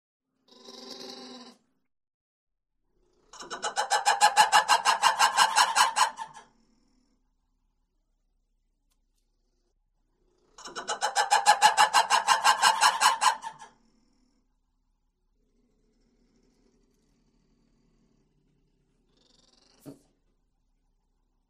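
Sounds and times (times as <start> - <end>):
lemur barks and howls: 3.6 - 6.4, 10.8 - 13.7.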